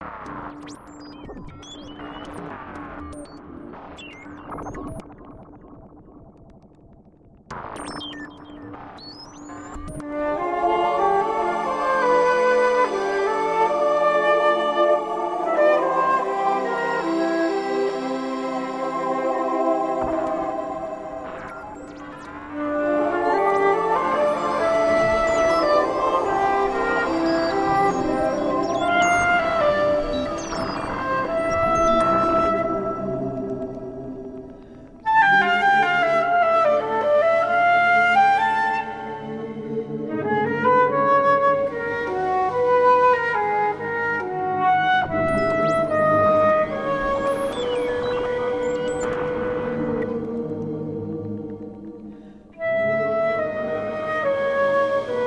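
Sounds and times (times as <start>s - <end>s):
icy electronic sounds: 0.0s - 10.2s, 19.0s - 35.2s, 44.2s - 52.6s
flute: 9.5s - 50.4s, 52.3s - 55.2s.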